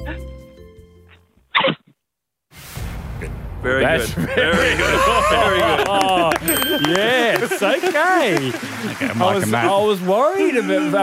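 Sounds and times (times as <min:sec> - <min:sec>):
person imitating a bride sneezing at the altar: 0:01.6 - 0:01.9
speech: 0:03.6 - 0:11.0
laughter: 0:03.7 - 0:11.0.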